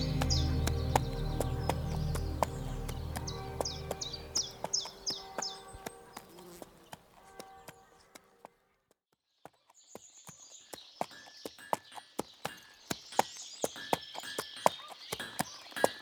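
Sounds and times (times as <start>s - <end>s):
insects chirping: 0.0s - 6.8s
ridden horse's hooves clip-clopping at a walking pace: 0.0s - 8.6s, 9.4s - 16.0s.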